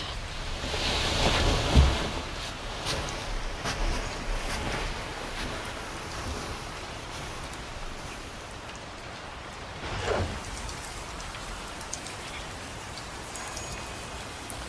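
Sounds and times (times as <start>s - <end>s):
rain pouring down outside an open sliding door: 0.0s - 14.6s.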